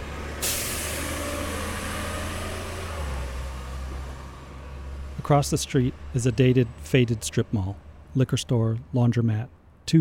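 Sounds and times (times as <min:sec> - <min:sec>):
bus air brakes releasing with a loud hiss: 0:00.4 - 0:02.7
speech: 0:05.2 - 0:09.9.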